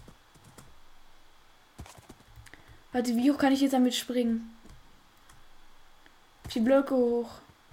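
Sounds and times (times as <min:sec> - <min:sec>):
video game horse hooves clip-clopping: 0:00.0 - 0:00.7, 0:01.8 - 0:02.6
speech: 0:02.9 - 0:04.6, 0:06.6 - 0:07.5.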